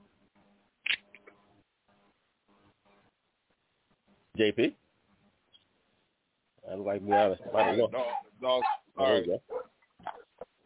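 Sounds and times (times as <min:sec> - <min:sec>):
speech: 0:04.4 - 0:04.8, 0:06.9 - 0:09.6
dog barking: 0:07.0 - 0:10.6.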